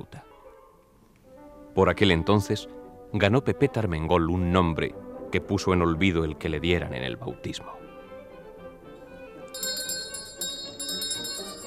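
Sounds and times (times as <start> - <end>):
speech: 1.8 - 7.9
bright metallic ringing strikes: 9.6 - 11.6.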